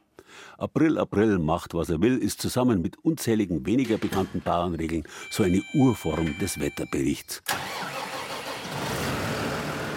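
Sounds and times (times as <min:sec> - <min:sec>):
speech: 0:00.6 - 0:08.0
huge diesel tractor engine with seed drill starting up in machinery shed: 0:07.5 - 0:09.9.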